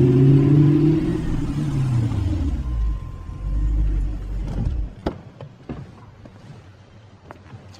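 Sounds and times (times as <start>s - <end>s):
car engine rumbling as car slows and pulls up at a house: 0.0s - 5.6s.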